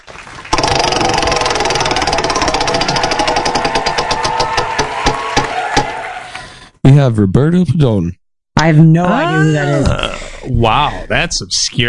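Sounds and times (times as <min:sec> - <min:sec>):
prize wheel spinning with rapid clicking: 0:00.5 - 0:05.2
speech: 0:07.0 - 0:11.8.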